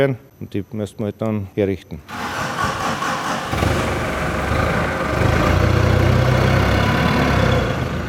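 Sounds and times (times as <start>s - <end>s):
speech: 0.0s - 2.2s
forklift engine idling and revving in a potato storage hall: 2.1s - 8.0s.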